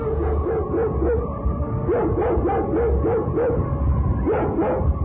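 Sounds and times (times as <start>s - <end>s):
dog barking aggressively: 0.2s - 1.3s, 1.9s - 3.7s, 4.3s - 4.9s.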